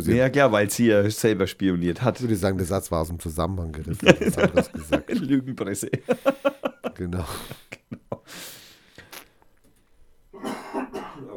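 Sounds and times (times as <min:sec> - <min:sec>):
speech: 0:00.0 - 0:07.6
laughter: 0:03.9 - 0:08.3
harsh rough coughing: 0:10.4 - 0:11.3.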